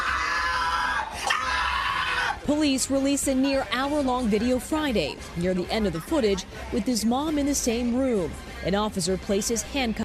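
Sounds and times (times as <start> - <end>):
man screaming at crying child: 0.0 - 2.4
speech: 2.5 - 10.0.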